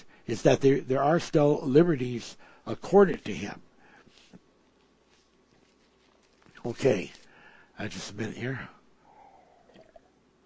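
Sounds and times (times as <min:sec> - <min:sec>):
speech: 0:00.3 - 0:03.7, 0:06.6 - 0:07.2, 0:07.8 - 0:08.8
speaker sipping and swallowing water: 0:09.1 - 0:10.1.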